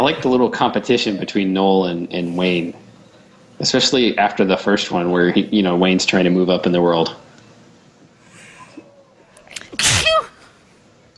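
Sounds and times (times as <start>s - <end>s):
speech: 0.0s - 2.8s, 3.6s - 7.2s
quiet intake of breath: 8.2s - 9.0s
person sneezing: 9.7s - 10.5s.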